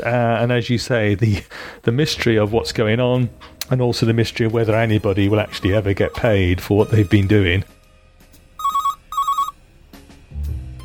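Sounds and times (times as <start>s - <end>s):
speech: 0.0s - 7.8s
telephone ringing with a bell-like warble: 8.6s - 9.6s.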